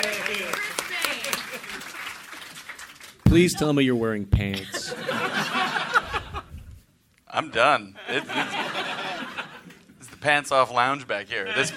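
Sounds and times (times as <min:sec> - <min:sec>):
small group clapping: 0:00.0 - 0:03.3
speech: 0:03.3 - 0:05.5, 0:07.4 - 0:08.9, 0:10.2 - 0:11.7
laughter: 0:04.5 - 0:06.8, 0:08.0 - 0:09.9, 0:11.4 - 0:11.7.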